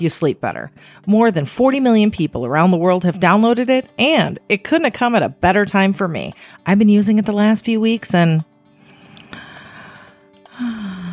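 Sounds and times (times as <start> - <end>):
speech: 0.0 - 8.5
person taking a deep grounding breath while practicing mindfulness: 8.8 - 11.1.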